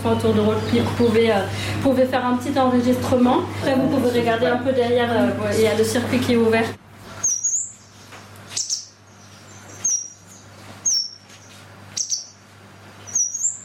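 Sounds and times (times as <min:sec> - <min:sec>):
blue tit song: 0:00.0 - 0:01.3, 0:07.1 - 0:13.6
speech: 0:00.0 - 0:06.8.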